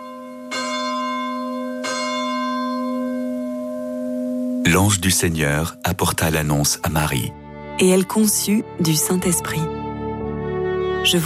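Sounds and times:
church bell tolling: 0.0 - 6.9
speech: 4.7 - 9.8, 11.0 - 11.2.

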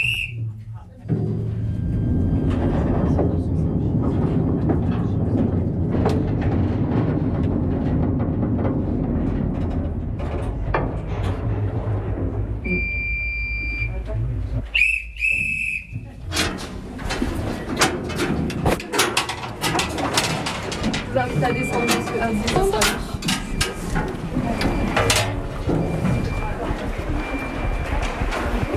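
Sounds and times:
whistle-like squeal: 0.0 - 0.4, 14.7 - 16.0
small mine train rumbling along rails: 0.0 - 28.7
mine train cars rattling and clattering over the rails: 1.2 - 12.9, 16.2 - 28.7.

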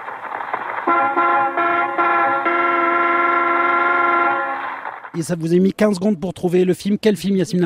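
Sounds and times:
speech: 0.9 - 1.7, 5.2 - 7.6
car horn honking: 0.9 - 4.9.

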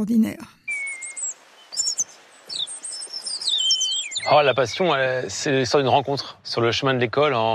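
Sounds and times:
speech: 0.0 - 0.6, 4.2 - 7.5
person whistling bird calls with high thin chirps and trills: 0.7 - 4.7.

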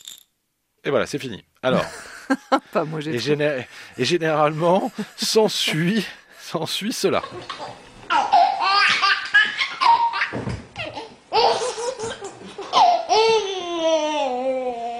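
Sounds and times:
speech: 0.8 - 7.9
baby laughing in high breathy giggles: 7.2 - 14.3.

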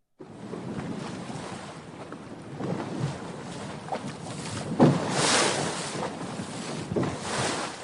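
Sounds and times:
broadband wind buffeting: 0.2 - 7.8
flat-bottomed pinasse boat engine rumble on the sea: 0.2 - 7.8
sea water rushing: 0.3 - 7.8.

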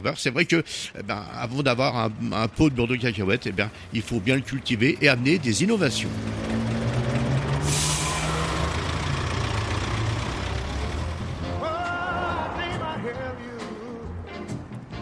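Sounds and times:
speech: 0.0 - 6.6
bus engine rumbling: 0.0 - 14.9
bus air brakes hissing: 7.5 - 9.1.

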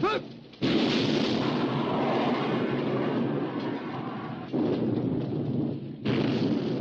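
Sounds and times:
shell explosions of every calibre: 0.0 - 6.7
heavy naval gunfire from British ships: 0.6 - 3.5, 4.4 - 6.7.

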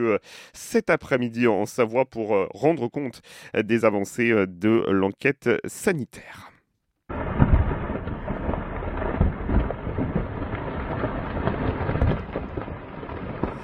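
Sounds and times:
speech: 0.0 - 6.5
rumbling roar of tumbling rock in a mountain couloir: 7.1 - 13.6.

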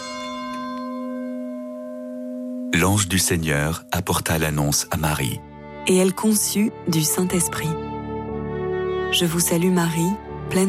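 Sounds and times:
church bell ringing: 0.0 - 5.2
speech: 2.7 - 7.8, 9.1 - 10.6.

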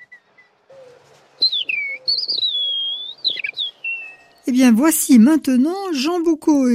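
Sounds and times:
person whistling an imitation of a male skylark's song: 0.0 - 0.5, 1.4 - 4.4
speech: 4.5 - 6.7.

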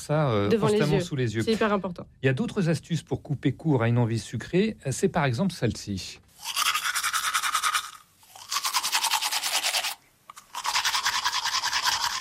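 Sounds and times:
speech: 0.0 - 6.6
vigorous tooth brushing: 6.4 - 12.2.

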